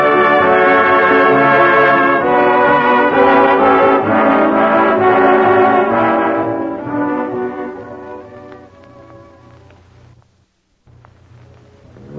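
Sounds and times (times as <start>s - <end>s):
deep droning foghorn blasts: 0.0s - 9.6s.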